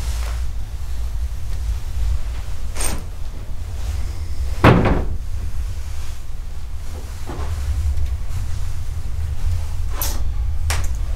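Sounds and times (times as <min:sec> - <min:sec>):
low rumble of wind or engine noise: 0:00.0 - 0:11.1
door swinging open and banging shut: 0:04.6 - 0:05.3.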